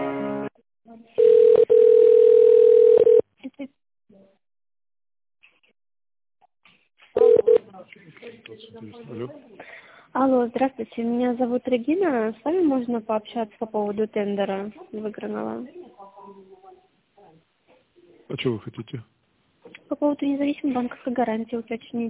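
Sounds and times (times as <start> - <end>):
shifting melodic telephone tones while a business call is transferred: 1.2 - 3.2, 7.2 - 7.6
speech: 11.0 - 16.4, 18.3 - 19.1, 20.0 - 22.0.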